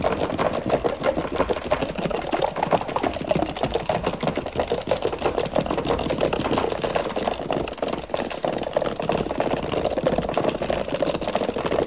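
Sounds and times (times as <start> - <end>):
running horse hoofbeats: 0.0 - 11.8.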